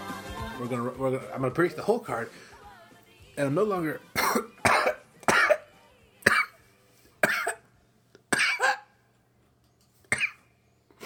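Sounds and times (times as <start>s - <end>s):
speech: 0.6s - 2.5s, 3.3s - 4.5s
person coughing after inhaling a hair from their own mustache: 4.2s - 5.7s, 7.2s - 7.7s, 8.3s - 8.9s, 10.1s - 10.4s.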